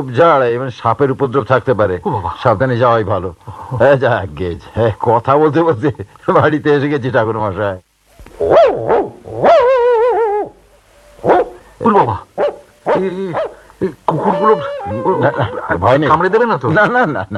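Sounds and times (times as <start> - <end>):
speech: 0.0 - 9.5, 11.2 - 17.3
pet dog barking and yelping at newcomers: 8.4 - 11.7, 12.4 - 13.6
laughter: 13.0 - 17.3.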